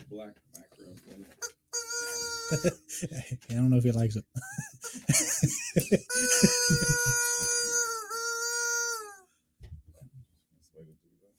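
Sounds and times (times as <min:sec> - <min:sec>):
speech: 0:00.1 - 0:01.5, 0:02.5 - 0:07.5
held chicken squawking in distress: 0:01.4 - 0:02.7, 0:06.1 - 0:09.2
laughter: 0:02.4 - 0:03.5, 0:04.3 - 0:07.7.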